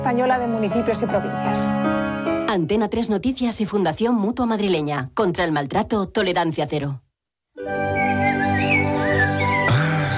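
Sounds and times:
speech: 0.1 - 7.0
birds singing in summer: 7.9 - 10.1.

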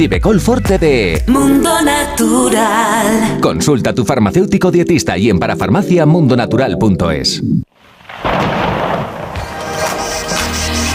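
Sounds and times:
speech: 0.0 - 7.7
deep rumble of thunder: 7.7 - 10.0
sudden burst of heavy rain: 7.8 - 10.0.

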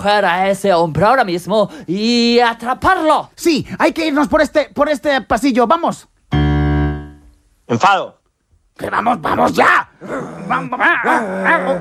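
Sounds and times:
speech: 0.0 - 6.1, 7.7 - 8.2, 8.8 - 11.7
small dog barking and growling angrily: 9.3 - 11.7.

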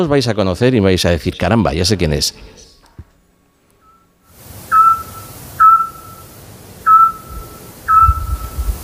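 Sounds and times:
speech: 0.0 - 2.6
low hiss of night ambience: 0.0 - 8.8
scops owl calling at night in a town centre with whistled notes: 4.7 - 8.6.

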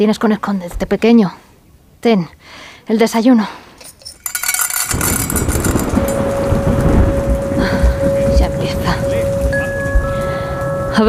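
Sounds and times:
speech: 0.0 - 3.6
deep rolling rumble of thunder: 4.7 - 10.6
heavy rain during a large electrical storm: 4.7 - 10.9.

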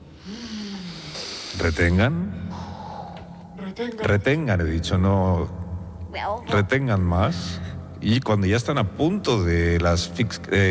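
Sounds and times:
several people deep inhaling in breathing exercise: 0.0 - 3.6
speech: 1.6 - 2.4, 3.8 - 10.6.

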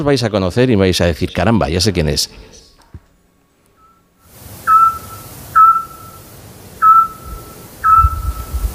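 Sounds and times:
speech: 0.0 - 2.6
scops owl sonar-like whistled notes in a town centre: 4.6 - 6.2, 6.8 - 8.6.

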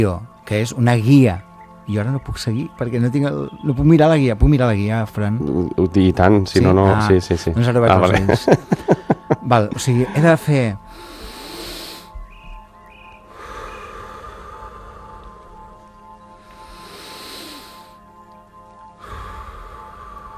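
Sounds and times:
speech: 0.0 - 11.1
laughter: 5.5 - 10.8
slow conscious breathing during a guided breathing exercise: 8.6 - 20.3.

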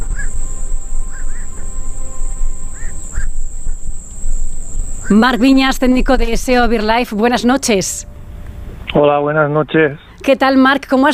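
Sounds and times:
birds calling at an ornithological reserve during solar eclipse totality: 0.0 - 6.6
steady high-pitched whine: 0.0 - 10.2
speech: 5.1 - 8.1, 8.9 - 11.1.

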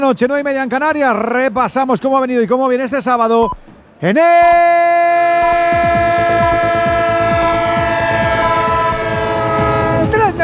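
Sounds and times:
speech: 0.0 - 4.9
steady train horn: 5.4 - 10.4.

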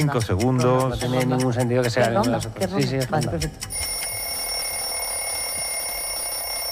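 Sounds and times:
speech: 0.0 - 4.0
electronic timer end signal sounding like an alarm clock: 3.6 - 6.7.

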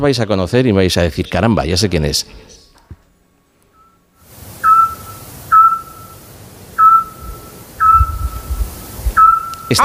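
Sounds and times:
speech: 0.0 - 2.5
Eurasian scops owl giving clear mellow whistled notes in Peñaranda de Duero: 4.6 - 6.2, 6.8 - 8.6, 9.2 - 9.8.

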